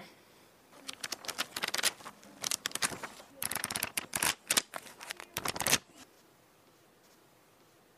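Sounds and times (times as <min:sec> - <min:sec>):
pages of a rough-draft notebook being flipped quickly: 0:00.8 - 0:06.1.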